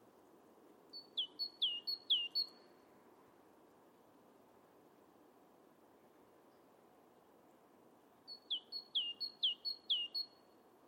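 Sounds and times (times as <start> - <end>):
soft background hiss: 0.0 - 10.8
great tit singing high two-note phrases: 1.0 - 2.6, 8.3 - 10.3.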